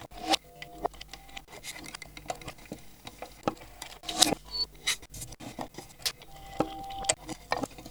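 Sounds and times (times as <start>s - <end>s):
music box composition: 0.2s - 1.6s, 6.2s - 7.6s.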